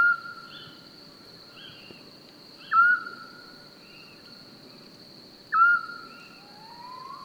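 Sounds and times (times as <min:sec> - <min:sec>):
Eurasian scops owl calling with monotone whistle in Francheville: 0:02.7 - 0:03.2, 0:05.5 - 0:07.2.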